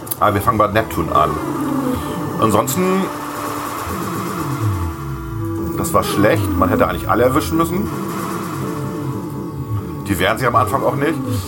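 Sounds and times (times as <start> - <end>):
speech: 0.2 - 1.6, 2.4 - 3.2, 5.8 - 8.1, 10.1 - 11.4
classical fugue used as video game background music: 0.3 - 11.4.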